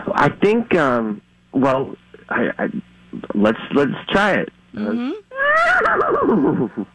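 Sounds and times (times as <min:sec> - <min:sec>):
speech: 0:00.2 - 0:06.9
person's voice imitating a horse neighing: 0:04.8 - 0:06.9.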